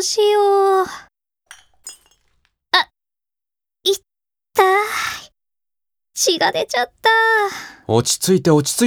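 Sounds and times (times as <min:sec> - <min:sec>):
speech: 0:00.0 - 0:01.1, 0:04.6 - 0:05.2, 0:06.2 - 0:08.8
broken glass pieces clinking together: 0:01.5 - 0:02.5.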